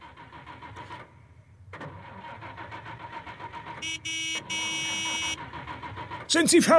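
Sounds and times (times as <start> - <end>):
car engine being started: 0.0 - 6.7
car horn honks: 3.8 - 5.4
speech: 3.8 - 5.6, 6.3 - 6.7.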